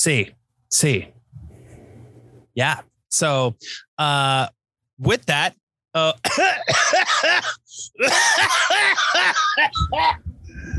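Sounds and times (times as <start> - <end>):
speech: 0.0 - 1.2, 2.6 - 10.3
bearded man clearing throat and coughing with something caught in it: 6.2 - 8.6
laughter: 6.4 - 10.2.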